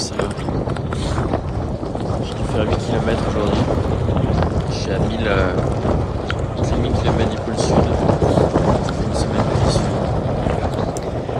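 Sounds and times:
strong wind gusts in polar whiteout buffeting the microphone: 0:00.0 - 0:11.3
speech: 0:00.2 - 0:00.5, 0:02.6 - 0:03.9, 0:04.8 - 0:06.0.

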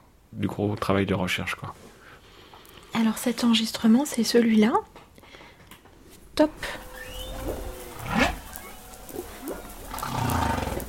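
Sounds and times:
speech: 0:00.3 - 0:02.0, 0:02.9 - 0:04.8, 0:06.4 - 0:06.8
steady hiss of ocean background: 0:01.8 - 0:04.0, 0:05.2 - 0:10.8
humpback whale song recorded underwater: 0:06.4 - 0:10.8.

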